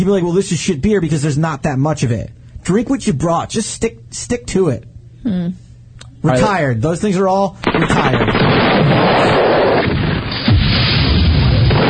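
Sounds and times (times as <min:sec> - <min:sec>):
speech: 0:00.0 - 0:05.6, 0:06.2 - 0:10.0
loud gunshot sound effect: 0:07.6 - 0:11.8.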